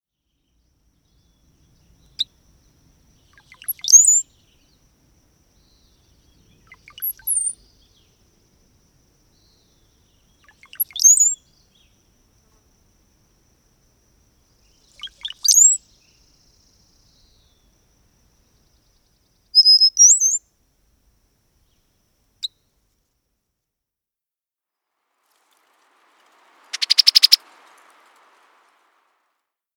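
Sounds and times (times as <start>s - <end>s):
Brown-headed Cowbird calling: 3.2s - 4.6s, 5.6s - 8.2s, 9.5s - 12.0s, 14.7s - 16.3s, 19.6s - 20.4s, 25.3s - 29.1s.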